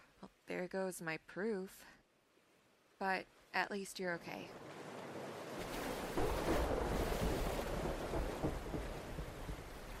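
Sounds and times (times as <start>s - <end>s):
speech: 0.5s - 2.0s, 3.0s - 4.8s
ocean surf waves breaking: 4.4s - 9.9s.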